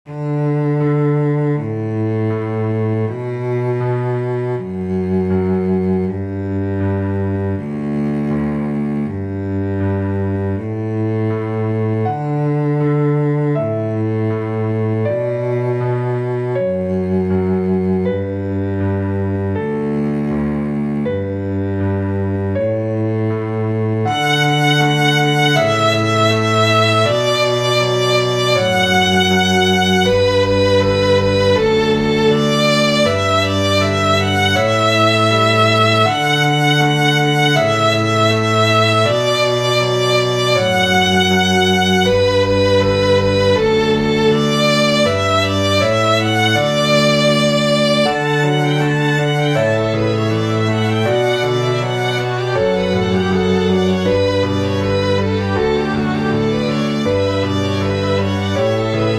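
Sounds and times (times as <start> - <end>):
cello: 0.0 - 59.1
piano: 0.0 - 59.1
two violins: 0.0 - 59.1.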